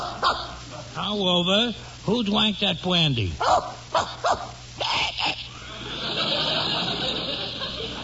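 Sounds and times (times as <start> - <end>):
dog barking and whimpering: 0.0 - 0.6, 3.4 - 4.6
steady broadband noise: 0.0 - 8.0
speech: 0.2 - 4.2
laughter: 4.9 - 8.0.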